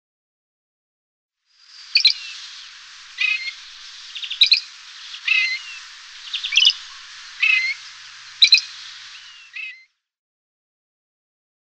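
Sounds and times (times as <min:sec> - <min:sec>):
great grey shrike song of scratchy and whistled phrases: 0:01.8 - 0:09.8.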